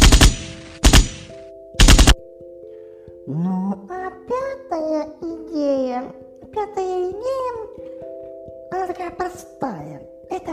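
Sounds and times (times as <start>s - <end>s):
machine gun and automatic rifle fire sound effect: 0.0s - 2.2s
speech: 3.3s - 4.0s, 6.0s - 7.4s, 9.0s - 10.5s.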